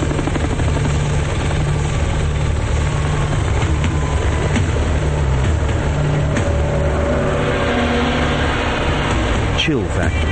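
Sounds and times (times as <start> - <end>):
helicopter flying overhead: 0.0 - 10.3
speech: 9.7 - 10.3.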